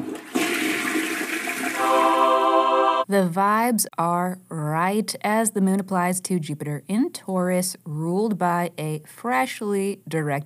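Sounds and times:
toilet flushing: 0.0s - 2.6s
speech: 3.1s - 10.4s.

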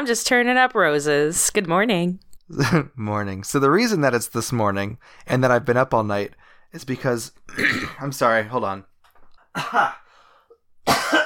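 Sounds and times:
speech: 0.0s - 8.9s, 9.6s - 10.0s
loud harsh cough: 7.5s - 8.1s, 9.6s - 10.0s, 10.8s - 11.2s
breathy exhale: 10.0s - 10.6s.

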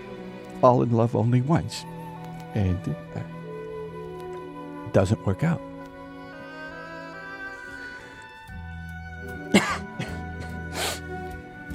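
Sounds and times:
speech: 0.6s - 3.4s, 5.0s - 5.7s
sharp breathy coughs: 9.5s - 10.5s.

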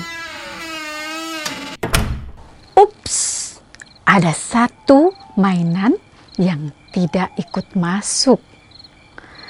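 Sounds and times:
cupboard door creaking: 0.0s - 2.7s
speech: 4.2s - 8.5s.

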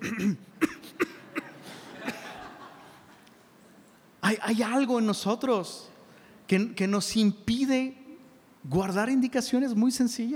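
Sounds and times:
short dry coughs: 0.0s - 2.5s
laughter: 1.2s - 3.6s
speech: 4.3s - 5.9s, 6.5s - 8.0s, 8.6s - 10.3s.

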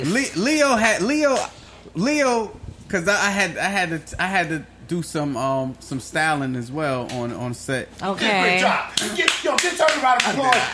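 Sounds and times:
speech: 0.0s - 10.7s
hands clapping in applause: 8.9s - 10.7s.

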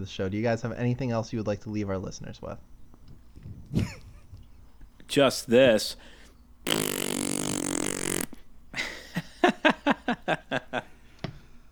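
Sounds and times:
speech: 0.0s - 2.8s, 3.7s - 4.0s, 5.1s - 7.1s, 10.1s - 10.9s
laughter: 3.7s - 4.4s, 8.8s - 11.0s
fart: 6.6s - 8.4s.

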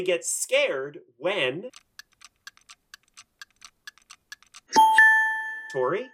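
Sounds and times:
speech: 0.0s - 1.9s, 5.7s - 6.1s
grandfather clock ticking: 1.6s - 5.9s
grandfather clock chime ringing: 4.7s - 6.1s.

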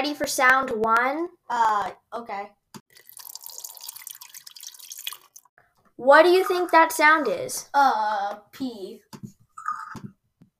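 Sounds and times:
speech: 0.0s - 3.0s, 6.0s - 9.3s
water dripping: 2.8s - 5.5s.

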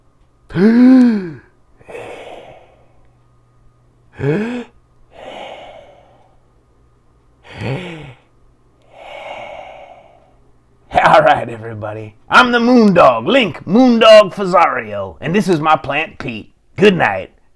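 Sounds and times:
big deep breaths with voiced inhales and long exhales: 0.5s - 3.2s, 4.1s - 6.5s, 7.4s - 10.6s
speech: 0.6s - 1.0s, 4.2s - 4.7s, 11.4s - 17.3s.

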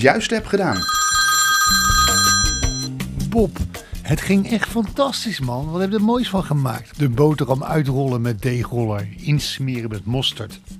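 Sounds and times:
speech: 0.0s - 1.1s, 3.4s - 10.7s
telephone ringing tone while placing a call: 0.7s - 2.9s.

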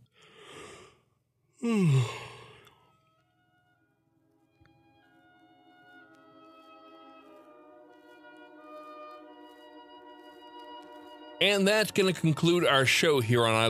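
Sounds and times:
speech: 1.6s - 2.3s, 11.4s - 13.6s
person yawning: 1.6s - 2.7s
soft music: 1.7s - 13.6s.

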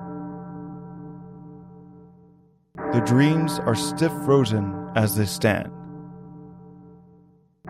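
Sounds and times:
large ebony clock striking chimes: 2.8s - 5.7s
speech: 2.9s - 5.8s.

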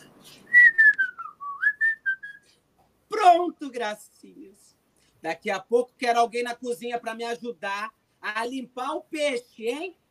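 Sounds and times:
woman whistling a classical melody: 0.5s - 2.4s
speech: 3.4s - 10.0s.

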